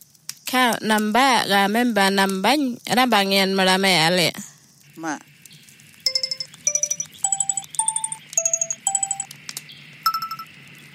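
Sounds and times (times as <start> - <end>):
low hum: 0.0 - 10.9
speech: 0.5 - 5.3
telephone keypad tones entering a phone banking PIN and hash key: 6.1 - 9.3, 10.1 - 10.5.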